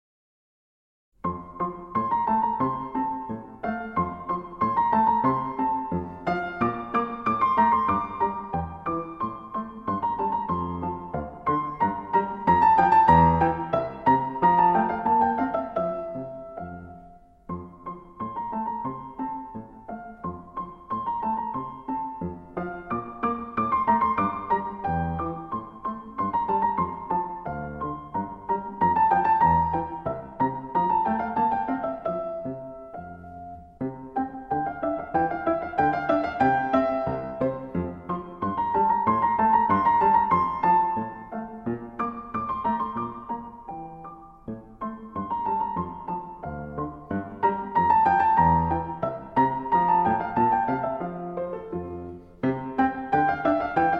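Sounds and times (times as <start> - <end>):
piano piece: 1.2 - 53.9.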